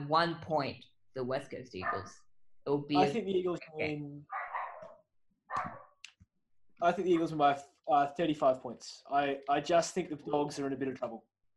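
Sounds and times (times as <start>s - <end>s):
speech: 0.1s - 4.4s, 6.8s - 11.3s
dogs barking and yipping: 1.8s - 2.2s, 4.3s - 5.9s
dogs whining: 4.3s - 5.9s.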